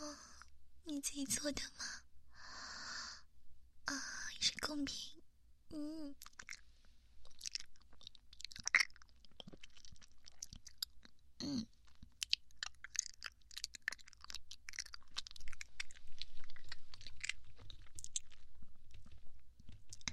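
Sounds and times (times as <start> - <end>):
speech: 1.0 - 2.0, 3.9 - 6.4, 11.4 - 11.7
chewing osmanthus cake: 6.2 - 20.1.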